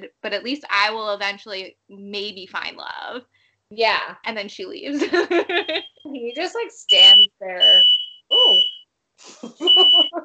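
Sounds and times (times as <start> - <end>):
speech: 0.2 - 7.9, 9.2 - 10.2
laughter: 5.0 - 5.9, 9.3 - 10.2
smoke alarm high-pitched beeps: 6.9 - 8.8, 9.7 - 10.1.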